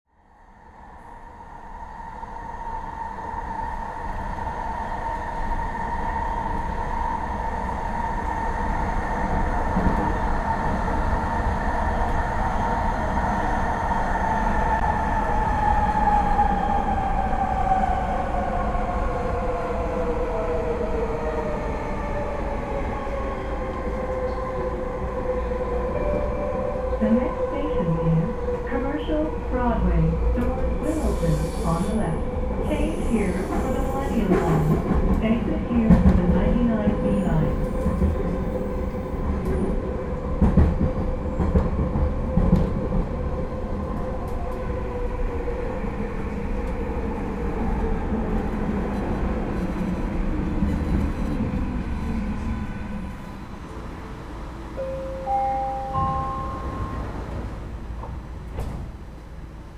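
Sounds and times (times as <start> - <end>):
noisy SkyTrain ride in Vancouver Canada: 0.1 - 59.7.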